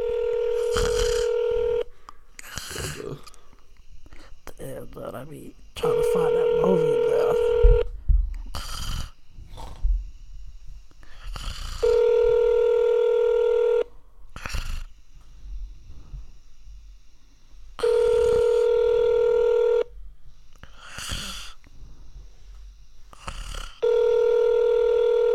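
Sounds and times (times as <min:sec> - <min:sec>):
steady electronic phone ringback tone: 0:00.0 - 0:01.9, 0:05.8 - 0:07.9, 0:11.8 - 0:13.9, 0:17.8 - 0:19.9, 0:23.8 - 0:25.3
speech: 0:05.0 - 0:07.6.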